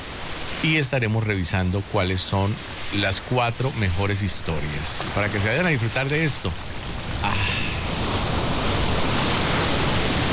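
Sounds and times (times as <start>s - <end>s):
breeze at a beach: 0.0s - 10.3s
sea waves at a beach: 0.0s - 10.3s
speech: 0.6s - 7.6s.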